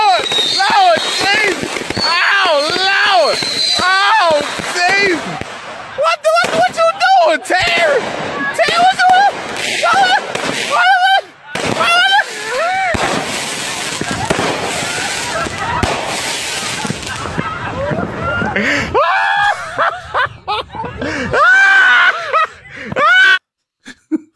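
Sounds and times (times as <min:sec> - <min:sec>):
fireworks exploding in a street: 0:00.0 - 0:19.0
people screaming and shouting in high-pitched voices: 0:00.0 - 0:23.4
laughter: 0:00.0 - 0:24.3.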